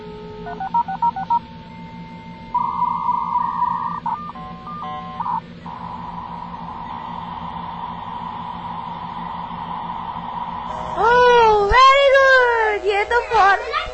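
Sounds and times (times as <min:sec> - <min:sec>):
long steady dial-up line tone: 0:00.0 - 0:13.9
low hum: 0:00.0 - 0:13.9
speech: 0:00.4 - 0:01.1
touch-tone keypad beeps dialing a phone number for dial-up internet: 0:00.5 - 0:01.4, 0:02.6 - 0:05.4.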